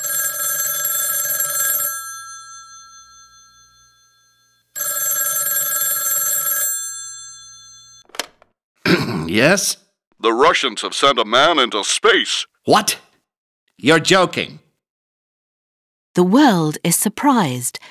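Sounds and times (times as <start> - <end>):
old-fashioned telephone bell ringing: 0.0 - 8.1
speech: 9.3 - 13.0, 13.8 - 14.6, 16.2 - 17.8.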